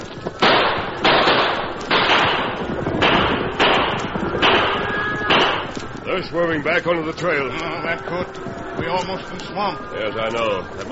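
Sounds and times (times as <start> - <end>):
gunshots fired over a stampeding cattle herd: 0.4 - 5.8
speech: 6.2 - 10.9.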